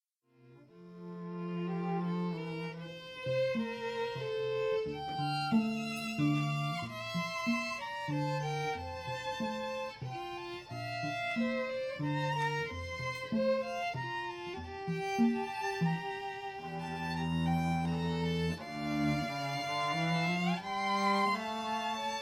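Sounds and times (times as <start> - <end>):
string quartet playing: 0.4 - 22.1.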